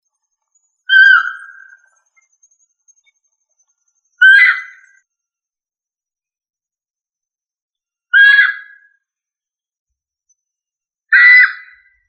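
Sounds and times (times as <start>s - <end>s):
rail Rallidae harsh squawking calls: 0.9s - 1.8s, 4.2s - 4.9s, 8.2s - 8.8s.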